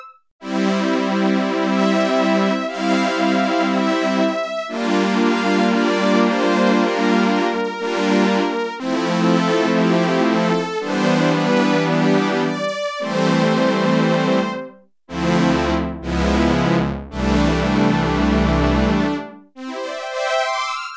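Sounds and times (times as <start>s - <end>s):
Oberheim OB-8 synthesizer fiddle factory patch: 0.5s - 20.8s.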